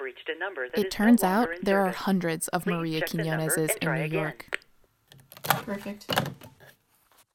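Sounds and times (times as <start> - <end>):
speech: 0.2 - 4.6, 5.7 - 6.3
telephone keypad dialing tones: 0.8 - 4.7.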